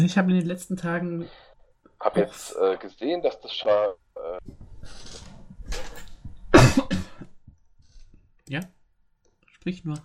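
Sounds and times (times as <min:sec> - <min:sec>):
speech: 0:00.0 - 0:05.1, 0:08.5 - 0:08.8, 0:09.6 - 0:10.0
breathy coughs: 0:06.5 - 0:07.4.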